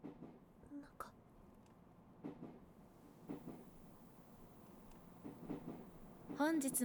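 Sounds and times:
moving train interior rumble: 2.0 - 6.8
speech: 6.4 - 6.8.

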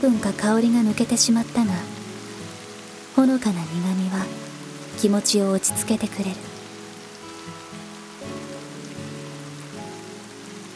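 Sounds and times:
speech: 0.0 - 2.0, 3.2 - 4.4, 5.0 - 6.5
gentle steady rain falling outside a window: 0.0 - 10.7.

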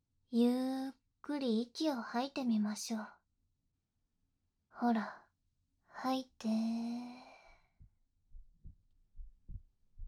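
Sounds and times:
speech: 0.3 - 0.6, 1.3 - 3.2, 4.8 - 5.2, 6.0 - 7.3
faint low heartbeat: 8.3 - 10.0.

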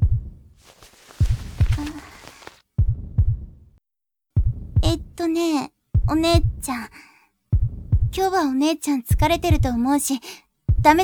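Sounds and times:
deep pounding heartbeat: 0.0 - 0.4, 2.8 - 3.6, 4.4 - 5.2, 6.0 - 6.7, 7.5 - 8.2, 9.1 - 9.8, 10.7 - 11.0
soft breathy hiss: 0.6 - 2.6
speech: 5.2 - 7.1, 8.1 - 11.0.

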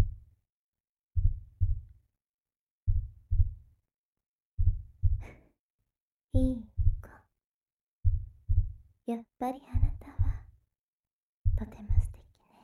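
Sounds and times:
slow heartbeat: 0.0 - 0.2, 1.2 - 1.9, 2.9 - 3.6, 4.6 - 5.4, 6.4 - 7.1, 8.0 - 8.8, 9.7 - 10.5, 11.5 - 12.2
speech: 9.1 - 9.9.

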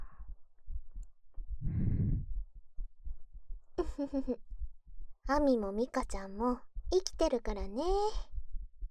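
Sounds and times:
heartbeat: 0.0 - 8.8
short hummed vocal sound: 3.8 - 4.4
speech: 4.0 - 4.5, 5.3 - 8.3.

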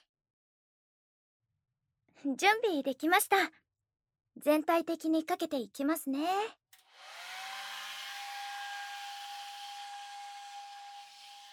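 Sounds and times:
speech: 2.2 - 3.6, 4.4 - 6.6
hair dryer blowing with motor whine: 6.8 - 11.5.

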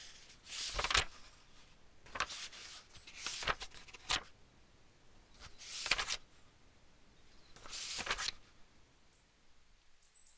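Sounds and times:
thin pages of a hardcover book rustling as they are turned: 0.0 - 4.4, 5.2 - 6.5, 7.5 - 8.6.

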